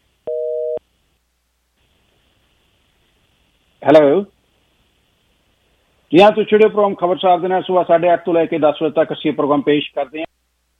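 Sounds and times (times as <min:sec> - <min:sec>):
faint hiss: 0:00.0 - 0:10.7
telephone line tone of an incoming call: 0:00.3 - 0:00.8
speech: 0:03.8 - 0:04.4, 0:06.1 - 0:10.3.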